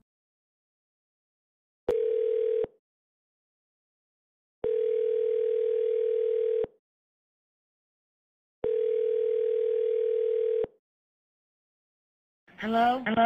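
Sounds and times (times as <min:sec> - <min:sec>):
steady mid-pitched telephone tones: 0:01.9 - 0:02.7, 0:04.6 - 0:06.7, 0:08.6 - 0:10.7
person speaking: 0:12.6 - 0:13.2.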